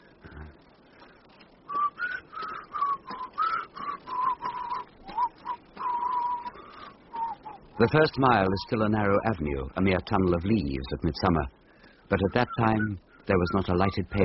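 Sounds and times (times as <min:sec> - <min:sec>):
faint hiss: 0:00.0 - 0:14.2
person whistling a simple tune: 0:01.7 - 0:07.6
speech: 0:07.8 - 0:14.2.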